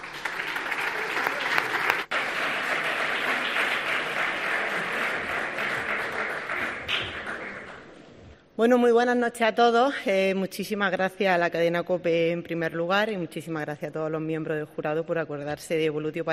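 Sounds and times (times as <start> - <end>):
large audience applauding at an award ceremony: 0.0 - 7.9
speech: 8.6 - 16.3.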